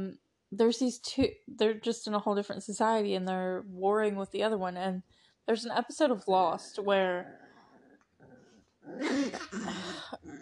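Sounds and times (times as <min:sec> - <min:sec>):
speech: 0:00.0 - 0:07.4, 0:08.8 - 0:10.3
dog growling in annoyance: 0:07.2 - 0:10.3.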